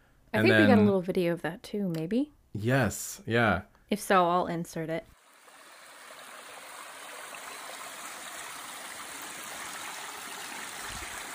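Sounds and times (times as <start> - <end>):
speech: 0.4 - 5.2
mountain stream rushing over rocks: 5.3 - 11.3.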